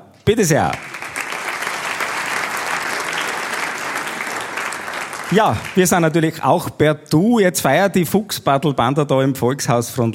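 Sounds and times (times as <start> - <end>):
speech: 0.3 - 0.9, 5.3 - 10.1
dense applause from a sizable audience: 0.6 - 6.4.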